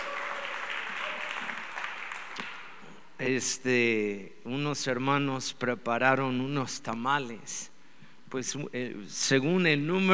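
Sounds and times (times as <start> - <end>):
church audience applause: 0.0 - 2.8
speech: 3.2 - 7.7, 8.3 - 10.1.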